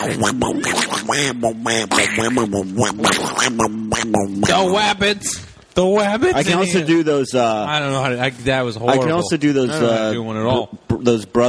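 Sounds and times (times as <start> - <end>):
person imitating a cartoon duck's quacking voice: 0.0 - 5.3
speech: 0.0 - 11.4.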